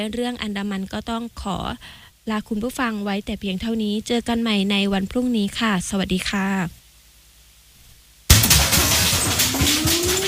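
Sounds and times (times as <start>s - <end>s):
speech: 0.0s - 6.8s
earthquake shaking sound effect in a safety drill: 8.3s - 10.2s.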